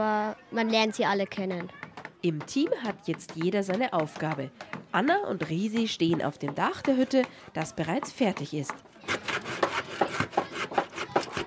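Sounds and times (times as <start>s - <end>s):
speech: 0.0s - 9.2s
hand sawing of wooden boards on a hut roof: 9.0s - 11.4s.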